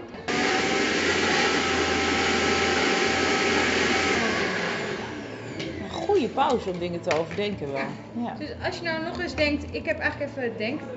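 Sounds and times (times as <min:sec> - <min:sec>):
blender running with a low motor hum: 0:00.3 - 0:06.2
speech: 0:06.4 - 0:10.9.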